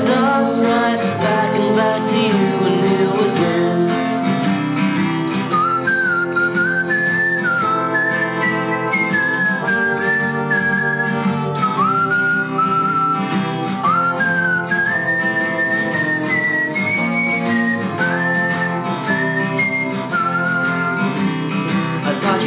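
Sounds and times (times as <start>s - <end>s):
instrumental backing music: 0.0s - 22.4s
person whistling a melody in a song: 5.4s - 21.3s.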